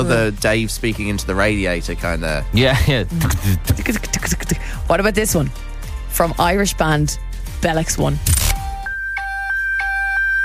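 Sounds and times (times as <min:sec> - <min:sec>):
speech: 0:00.0 - 0:08.4
bright electronic beeps in the style of a Nokia ringtone: 0:08.8 - 0:10.4.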